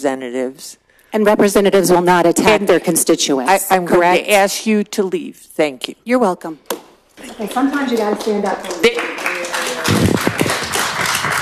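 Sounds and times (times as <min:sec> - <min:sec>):
speech: 0:00.0 - 0:09.1
people clapping in an echoing legislative chamber: 0:07.2 - 0:11.4.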